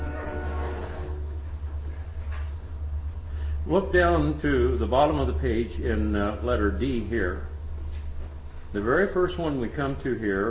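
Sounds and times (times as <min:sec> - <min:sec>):
train rumbling past with grinding, rattling noise: 0:00.0 - 0:07.6
speech: 0:03.7 - 0:07.6, 0:08.7 - 0:10.5.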